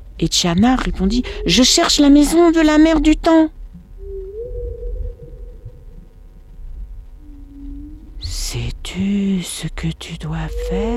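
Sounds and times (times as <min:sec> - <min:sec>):
deep throbbing rumble: 0:00.0 - 0:10.9
speech: 0:00.2 - 0:03.6, 0:09.8 - 0:10.9
whale call: 0:01.2 - 0:02.7, 0:04.0 - 0:06.2, 0:07.2 - 0:08.3, 0:10.4 - 0:10.9.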